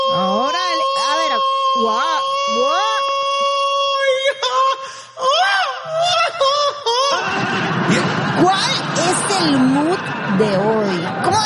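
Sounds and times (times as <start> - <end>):
man screaming loudly: 0.0 - 7.4
laughter: 5.8 - 11.4
speech: 9.4 - 11.4.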